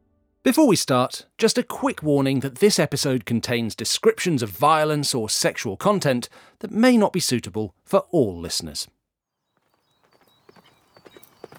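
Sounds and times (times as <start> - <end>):
speech: 0.4 - 9.0
knight's horse hooves galloping: 9.6 - 11.5.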